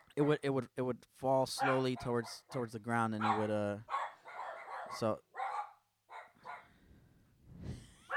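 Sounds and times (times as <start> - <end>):
speech: 0.2 - 4.0, 4.9 - 5.3
dog barking: 1.6 - 2.6, 3.2 - 6.7.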